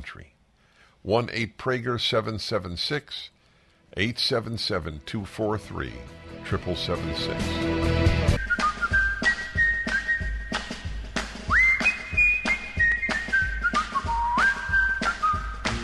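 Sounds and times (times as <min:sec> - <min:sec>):
speech: 0:00.1 - 0:00.4, 0:01.0 - 0:08.4
bouncy rhythmic backing of regular beats: 0:06.6 - 0:15.8
cheerful whistled tune: 0:08.4 - 0:10.9, 0:11.5 - 0:15.8.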